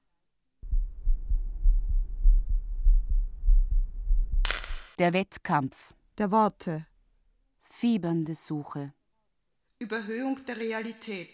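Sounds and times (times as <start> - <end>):
fast heartbeat: 0.6 - 4.8
speech: 5.0 - 6.9, 7.8 - 9.0, 9.8 - 11.3.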